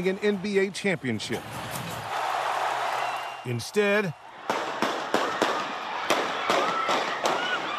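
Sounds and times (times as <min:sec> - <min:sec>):
speech: 0:00.0 - 0:01.7, 0:03.4 - 0:04.2
crowd noise at a street celebration: 0:00.0 - 0:07.7
gunshots during a street celebration: 0:04.4 - 0:07.7.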